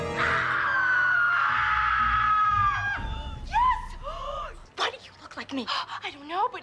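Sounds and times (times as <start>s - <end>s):
long loud high-pitched scream: 0.1s - 3.9s
speech: 5.5s - 6.6s.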